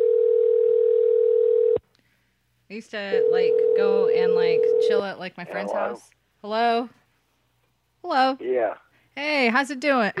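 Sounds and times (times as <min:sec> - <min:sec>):
telephone dial tone: 0:00.0 - 0:01.8, 0:03.2 - 0:05.0
speech: 0:02.7 - 0:07.0, 0:08.0 - 0:10.1.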